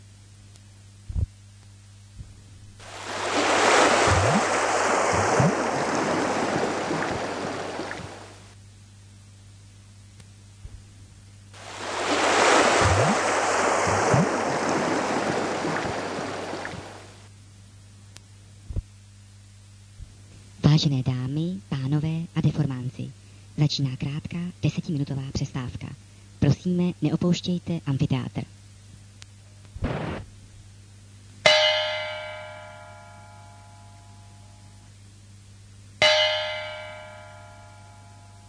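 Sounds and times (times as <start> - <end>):
steady low hum: 0.0 - 38.4
ocean waves rolling past a ship in open water: 2.8 - 8.5, 11.6 - 17.3
speech: 20.8 - 22.2, 23.7 - 26.0, 26.7 - 28.6.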